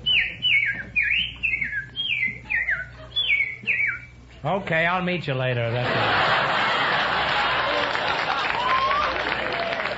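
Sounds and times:
person whistling imitation of bird calls: 0.0s - 4.2s
speech: 4.4s - 6.6s
laughter: 5.7s - 9.9s.

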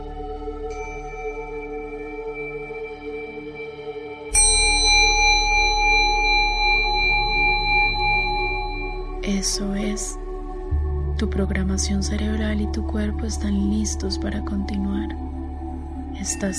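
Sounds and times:
steady low droning tone: 0.0s - 16.5s
bell ringing: 4.3s - 9.1s
speech: 9.4s - 10.2s, 11.2s - 15.3s, 16.2s - 16.5s.

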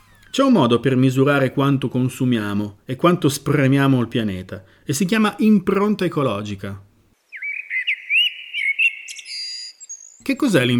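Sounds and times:
speech: 0.4s - 6.9s, 10.3s - 10.7s
blackbird singing in a vegetable garden: 7.2s - 10.7s.

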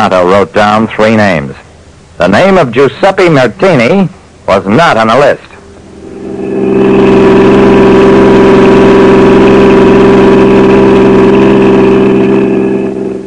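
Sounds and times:
speech: 0.0s - 1.6s, 2.2s - 5.5s
car engine running while driving: 5.6s - 13.2s.

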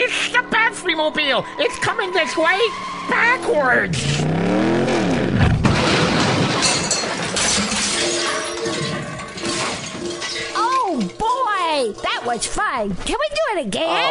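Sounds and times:
speech: 1.0s - 4.6s, 11.8s - 14.0s
van crashing: 1.8s - 12.7s
debris rattling: 5.4s - 13.1s
glass smashing and shattering: 5.6s - 12.6s.

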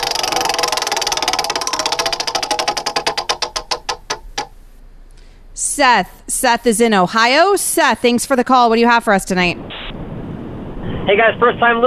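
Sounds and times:
game-show prize wheel spinning and clicking: 0.0s - 4.5s
speech: 5.8s - 9.7s, 11.1s - 11.8s.

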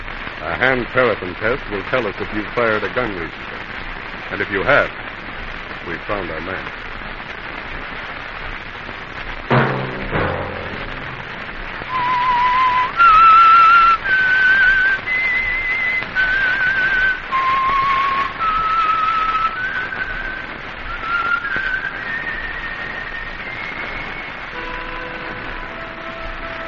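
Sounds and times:
faint hiss: 0.0s - 26.6s
speech: 0.4s - 5.0s, 5.8s - 6.8s
lone whistled theme melody for a radio program: 11.8s - 26.6s.

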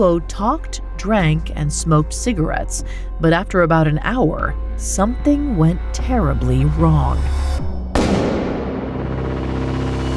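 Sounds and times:
speech: 0.0s - 7.8s
single loud gunshot echoing through mansion halls: 8.0s - 9.4s.

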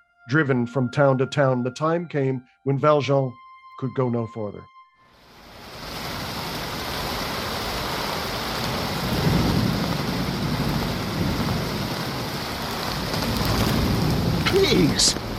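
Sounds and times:
speech: 0.3s - 4.7s, 14.7s - 15.3s
heavy rain pouring down: 5.2s - 15.3s.

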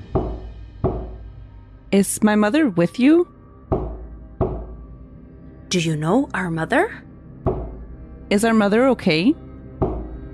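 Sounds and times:
solid knocks on wood at a seance: 0.1s - 1.2s, 3.7s - 4.8s, 7.5s - 7.8s, 9.8s - 10.2s
speech: 1.9s - 3.3s, 5.7s - 7.0s, 8.3s - 9.4s.

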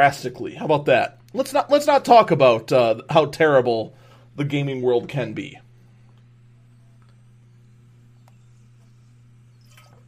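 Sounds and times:
speech: 0.0s - 5.6s
steady low electrical hum: 0.0s - 10.0s
person sipping water: 9.5s - 10.0s.

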